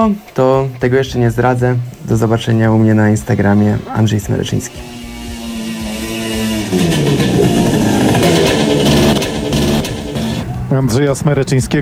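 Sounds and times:
speech: 0.0s - 5.0s, 6.7s - 7.4s, 10.8s - 11.7s
scooter engine running on illegal fuel: 3.1s - 10.7s.

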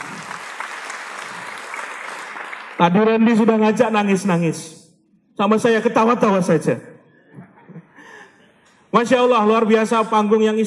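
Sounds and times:
audience applause at a motivational religious talk on stage: 0.0s - 2.8s
speech: 2.8s - 4.8s, 5.4s - 6.9s, 8.9s - 10.6s.

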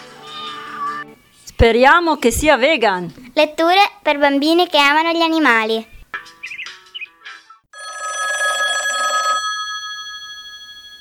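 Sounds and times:
speech: 1.6s - 5.9s
mobile phone ringing: 7.8s - 10.9s.

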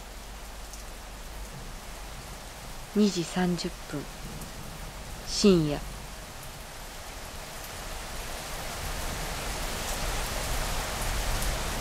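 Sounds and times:
heavy rain pouring: 0.0s - 11.8s
speech: 3.0s - 4.4s, 5.3s - 5.9s.

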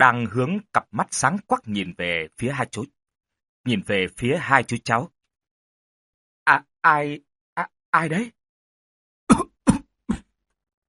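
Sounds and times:
speech: 0.0s - 3.0s, 3.6s - 5.2s, 6.4s - 8.4s
short dry coughs at night: 9.3s - 10.4s.

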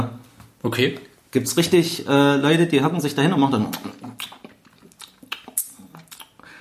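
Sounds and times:
speech: 0.0s - 4.4s
wet squelchy mouth smacking and chewing noises: 3.7s - 6.4s.

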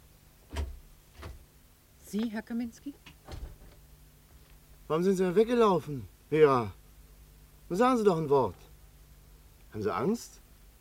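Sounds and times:
quiet low hum: 0.0s - 10.8s
door opening with two faint short clicks: 0.5s - 1.4s, 3.0s - 3.8s
speech: 2.1s - 3.2s, 4.9s - 6.8s, 7.7s - 8.6s, 9.7s - 10.4s.

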